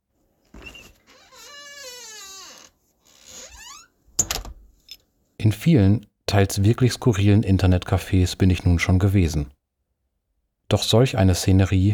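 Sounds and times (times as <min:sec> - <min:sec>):
squeaky door hinges creaking: 0:00.6 - 0:04.5
speech: 0:05.4 - 0:09.6, 0:10.7 - 0:11.9.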